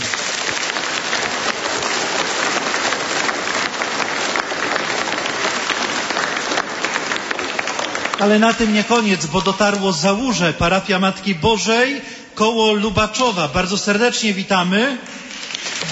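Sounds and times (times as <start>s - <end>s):
large crowd applauding at a gathering at a sanctuary: 0.0s - 10.2s, 15.0s - 15.9s
speech: 8.2s - 15.2s.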